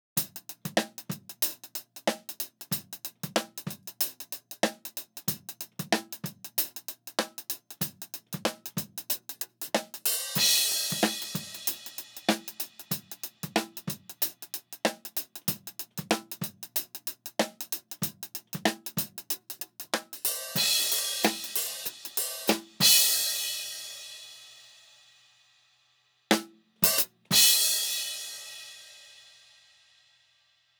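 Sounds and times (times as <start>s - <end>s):
hi-hat: 0.2s - 25.2s, 26.8s - 30.0s.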